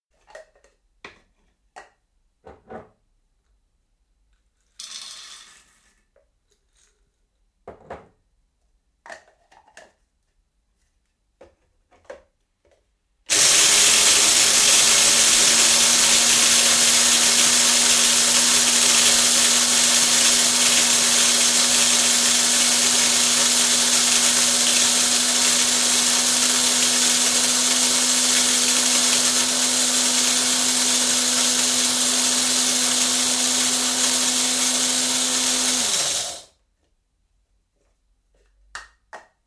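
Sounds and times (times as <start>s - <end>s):
coffee grinder being filled and operated: 13.3s - 36.5s.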